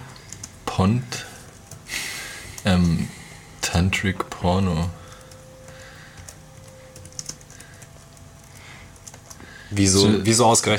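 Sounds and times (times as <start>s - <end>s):
faint hum: 0.0s - 10.7s
speech: 0.8s - 1.3s, 2.6s - 5.0s, 9.7s - 10.7s
typing on a computer keyboard: 4.8s - 9.4s.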